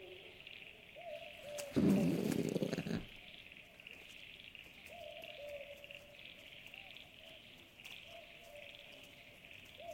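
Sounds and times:
brush-tailed possum grunting rasp in the woods: 0:01.8 - 0:03.1.

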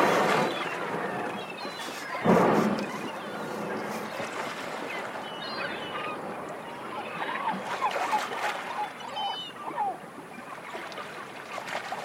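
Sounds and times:
hissing underwater background: 0:00.0 - 0:06.8
humpback whale song with tonal moans and upswept whoops: 0:00.0 - 0:11.0.

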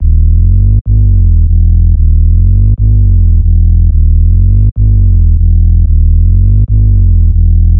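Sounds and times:
tech house bass loop in E minor: 0:00.0 - 0:07.7.

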